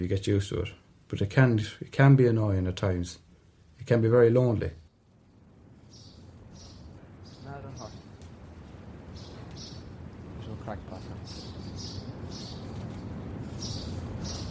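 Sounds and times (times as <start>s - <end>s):
speech: 0.0s - 3.2s, 3.8s - 4.8s
steady low rumble of outdoor noise: 0.0s - 14.4s
small birds chirping and twittering around nests: 3.9s - 14.4s.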